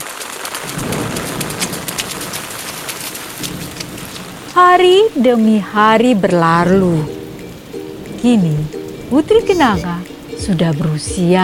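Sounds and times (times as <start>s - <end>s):
rain pouring: 0.0s - 11.4s
speech: 0.6s - 0.9s, 4.6s - 7.2s, 8.2s - 11.4s
low thunder rumbles: 0.6s - 7.6s.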